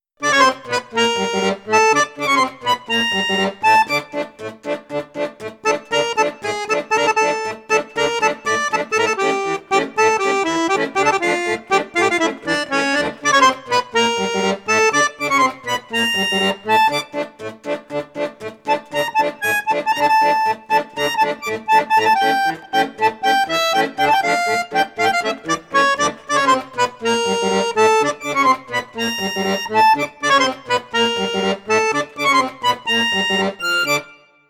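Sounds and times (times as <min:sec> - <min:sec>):
accordion playing on piccolo flute register: 0:00.2 - 0:34.4.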